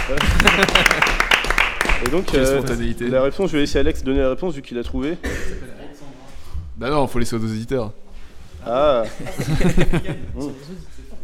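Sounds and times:
laughter: 0.0s - 1.4s, 9.0s - 11.1s
applause from a small group: 0.0s - 2.8s
speech: 0.1s - 1.1s, 2.0s - 5.8s, 6.8s - 8.0s, 8.6s - 11.2s.

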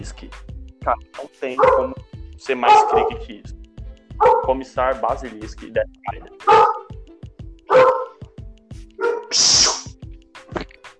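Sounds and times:
speech: 0.0s - 3.6s, 4.2s - 6.7s
dog barking: 1.6s - 2.0s, 2.6s - 3.2s, 4.2s - 4.6s, 6.4s - 6.9s, 7.7s - 8.2s, 9.0s - 9.6s.

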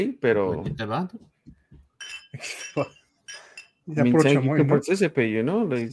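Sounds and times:
speech: 0.0s - 1.3s, 2.4s - 3.0s, 3.9s - 5.9s
glasses clinking in a toast: 2.0s - 4.6s.

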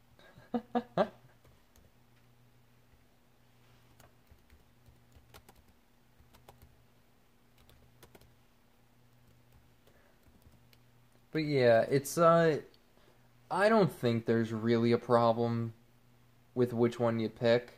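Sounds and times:
typing on a computer keyboard: 4.0s - 6.8s, 7.5s - 8.4s, 9.1s - 10.8s
speech: 11.4s - 12.7s, 13.5s - 15.8s, 16.6s - 17.7s.

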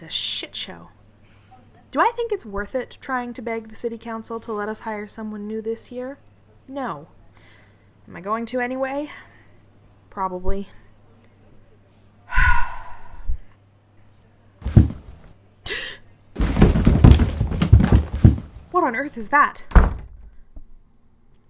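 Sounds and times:
speech: 0.0s - 1.0s, 1.9s - 7.5s, 8.1s - 9.3s, 10.1s - 10.8s, 18.9s - 19.8s
person gasping: 12.3s - 13.2s
bookshelf knocked around with heavy thuds and clattering: 14.6s - 15.3s, 16.4s - 18.8s.

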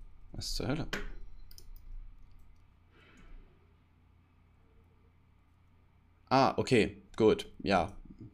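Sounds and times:
quiet hum: 0.0s - 8.3s
speech: 0.4s - 1.1s, 6.3s - 8.3s
computer mouse button clicking on a link: 1.5s - 2.6s.

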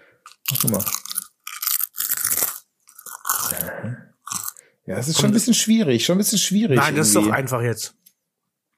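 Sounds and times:
speech: 0.2s - 1.0s, 4.9s - 8.0s
person biting and chewing a crisp snack: 0.2s - 4.6s.

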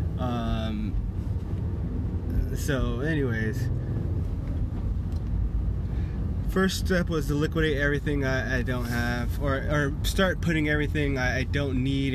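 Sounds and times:
low rumble of road noise inside a moving car: 0.0s - 12.1s
speech: 2.6s - 3.8s, 6.6s - 12.1s.

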